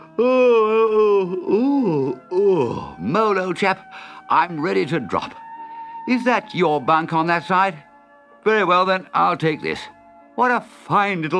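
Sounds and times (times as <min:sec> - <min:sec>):
voice acting out a tremendous yawn: 0:00.0 - 0:03.1
speech: 0:00.2 - 0:00.5, 0:02.7 - 0:05.4, 0:06.1 - 0:11.3
short breath: 0:03.9 - 0:04.3, 0:05.6 - 0:06.1.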